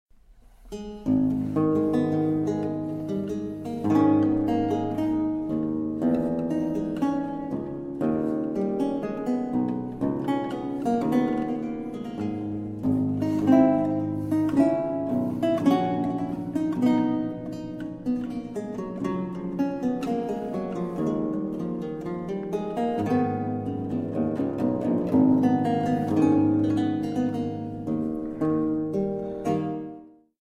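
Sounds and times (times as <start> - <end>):
theorbo strings plucked: 0.4 - 30.0.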